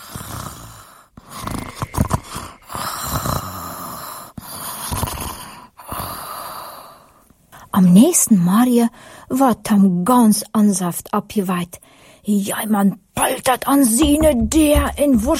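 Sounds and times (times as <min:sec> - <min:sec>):
soft snoring: 0:00.0 - 0:07.1
calm steady breathing: 0:00.0 - 0:07.7, 0:08.9 - 0:09.3, 0:11.8 - 0:12.3
speech: 0:07.8 - 0:15.3.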